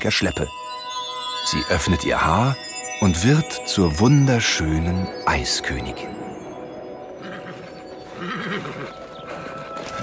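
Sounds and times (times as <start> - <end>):
speech: 0.0 - 0.6, 1.5 - 6.2
horse neighing while struggling through hip-deep powder snow: 7.2 - 10.0.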